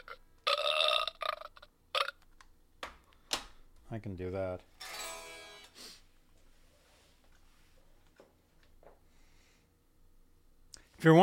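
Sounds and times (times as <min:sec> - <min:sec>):
person burping: 0:00.0 - 0:02.2
speech: 0:03.9 - 0:04.9, 0:11.0 - 0:11.2.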